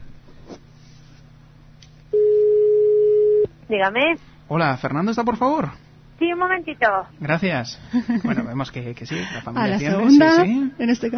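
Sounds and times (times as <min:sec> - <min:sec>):
soft low hum: 0:00.0 - 0:11.1
ringback tone of an outgoing telephone call: 0:02.2 - 0:03.4
speech: 0:03.7 - 0:11.1.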